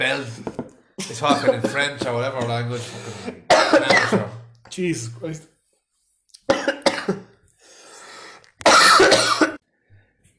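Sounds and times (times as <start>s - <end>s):
speech: 0.0s - 5.5s
harsh coughing: 1.0s - 4.4s, 6.5s - 7.3s, 8.6s - 9.6s
raspy wheezing breath: 2.7s - 3.5s, 7.6s - 8.5s.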